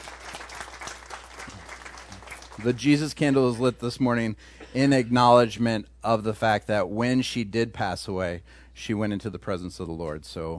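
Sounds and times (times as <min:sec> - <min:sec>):
church congregation applauding: 0:00.0 - 0:03.1
speech: 0:02.6 - 0:10.5.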